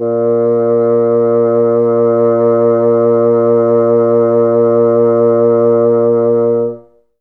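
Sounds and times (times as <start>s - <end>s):
bassoon note A sharp 1: 0.0s - 6.8s.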